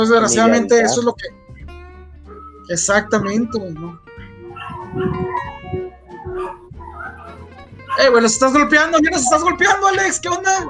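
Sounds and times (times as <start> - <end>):
speech: 0.0 - 1.4, 2.7 - 4.0, 4.9 - 5.5, 8.0 - 10.6
several dogs howling: 2.3 - 9.7, 10.4 - 10.6.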